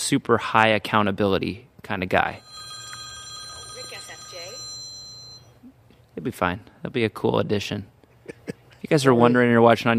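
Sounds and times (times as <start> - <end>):
speech: 0.1 - 2.5, 6.2 - 7.9, 8.8 - 9.9
phone ringing with a steady electronic tone: 2.4 - 5.6.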